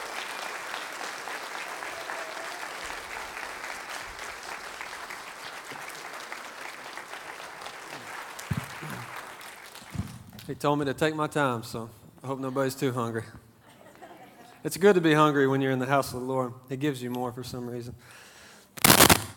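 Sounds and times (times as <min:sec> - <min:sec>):
crowd applauding: 0:00.0 - 0:10.2
speech: 0:10.5 - 0:13.4, 0:14.6 - 0:18.2
laughter: 0:13.6 - 0:14.6.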